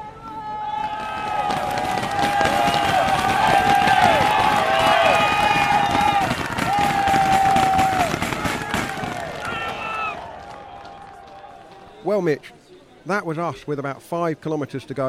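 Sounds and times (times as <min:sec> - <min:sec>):
roadside cycling fans cheering on the Puy de Dôme climb: 0:00.0 - 0:12.0
speech: 0:12.2 - 0:15.0.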